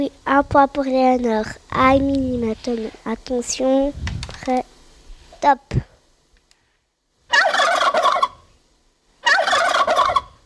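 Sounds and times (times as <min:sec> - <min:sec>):
speech: 0:00.0 - 0:04.7, 0:05.4 - 0:05.9
turkey gobbling: 0:07.3 - 0:08.5, 0:09.2 - 0:10.4.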